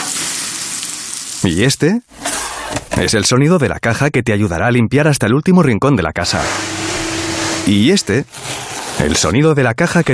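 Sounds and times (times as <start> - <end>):
food sizzling on a barbecue grill: 0.0 - 1.8
speech: 1.4 - 2.2, 2.9 - 6.9, 7.6 - 10.1.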